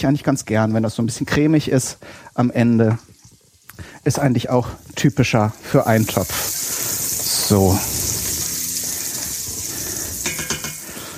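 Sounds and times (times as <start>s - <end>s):
speech: 0.0s - 3.1s, 3.8s - 6.6s, 7.5s - 7.9s
rushing sizzling hiss: 1.0s - 11.1s
water poured into a cooking pot: 5.6s - 11.1s.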